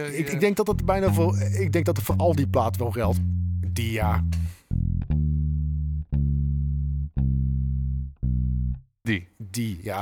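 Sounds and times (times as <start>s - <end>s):
speech: 0.0s - 4.5s, 9.1s - 10.0s
dark heavy rock guitar riff of low distorted chords: 0.7s - 8.7s.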